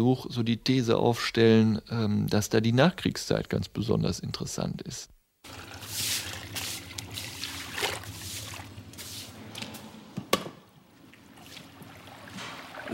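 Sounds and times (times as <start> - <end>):
speech: 0.0 - 5.8
water sloshing and trickling into a bucket: 5.4 - 9.9, 10.8 - 12.9
wet cloth wrung out over a bucket: 5.5 - 9.4, 11.0 - 12.9.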